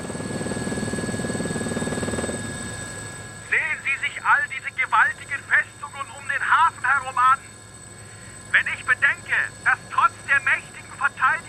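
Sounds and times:
helicopter rotor thumping in a fast chop: 0.0 - 3.1
helicopter engine whine: 0.0 - 11.4.

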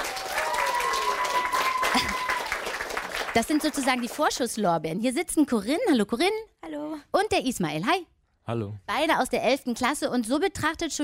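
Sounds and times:
small group clapping: 0.0 - 4.6
speech: 3.4 - 11.0.

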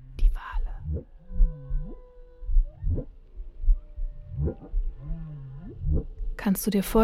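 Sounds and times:
whale song underwater: 0.8 - 6.3
speech: 6.4 - 7.0.

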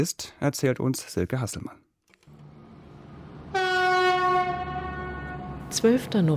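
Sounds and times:
speech: 0.0 - 1.9, 5.7 - 6.3
low rumble of rail noise: 2.3 - 6.3
approaching freight train horn blasting: 3.2 - 5.8.

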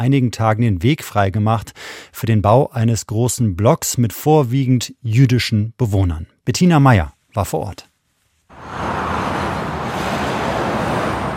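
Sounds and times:
speech: 0.0 - 7.9
roar of many cars moving along a busy highway: 8.5 - 11.3.

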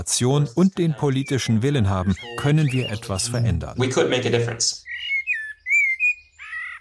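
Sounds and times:
speech: 0.0 - 4.9
songbird singing: 0.0 - 6.7.

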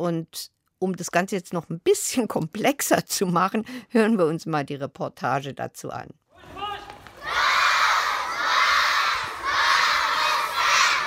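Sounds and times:
speech: 0.0 - 6.6
children aged six to thirteen shouting in unison at a primary school morning assembly in Qamishli: 7.1 - 11.0.

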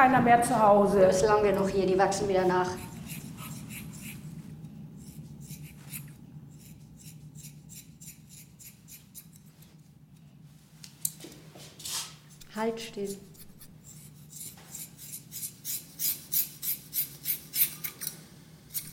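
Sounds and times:
speech: 0.0 - 3.2, 12.6 - 13.3
low hum: 0.0 - 18.9
scissors cutting hair: 2.7 - 4.3, 5.0 - 9.6, 12.3 - 18.9.

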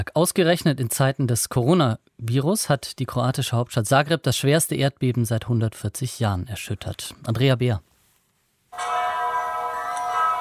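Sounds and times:
speech: 0.0 - 7.9
large cathedral bells ringing in Zagreb Croatia: 8.8 - 10.4.

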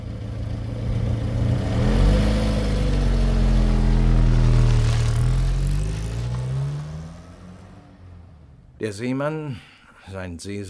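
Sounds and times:
car engine revving as the car accelerates hard and speeds away: 0.2 - 8.7
speech: 8.8 - 10.6.

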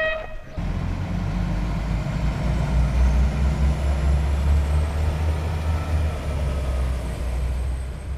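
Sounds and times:
brief tonal note: 0.0 - 0.6
regional train rolling along the tracks past fields, lakes and forests: 0.0 - 8.1.

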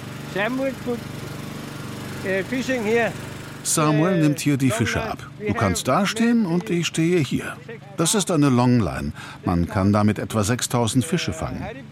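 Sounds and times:
small boat engine droning aboard a fishing boat: 0.0 - 7.9
speech: 0.4 - 1.2, 2.2 - 11.9.

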